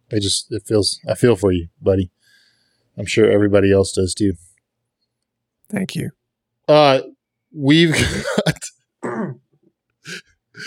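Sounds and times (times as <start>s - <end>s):
speech: 0.1s - 2.2s, 3.0s - 4.5s, 5.7s - 8.8s
person clearing throat: 8.0s - 10.3s.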